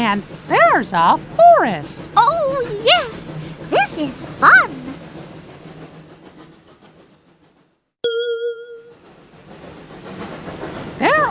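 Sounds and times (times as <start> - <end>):
train rumbling along the rails: 0.0 - 11.2
speech: 0.1 - 3.1, 4.0 - 4.8
single bright bell-like ding: 8.0 - 8.9.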